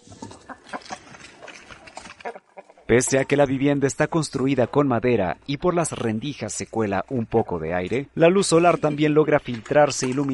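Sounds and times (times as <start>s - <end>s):
chickens clucking in a farmyard: 0.0s - 3.8s
speech: 2.9s - 10.3s.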